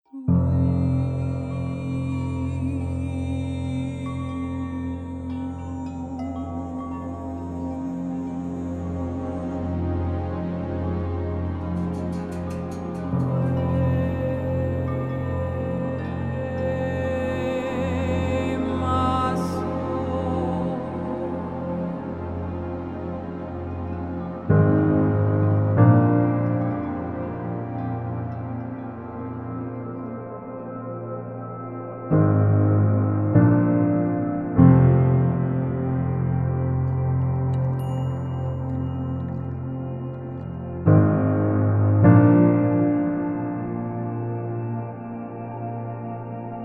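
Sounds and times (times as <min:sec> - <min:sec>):
emotional piano music: 0:00.0 - 0:46.6.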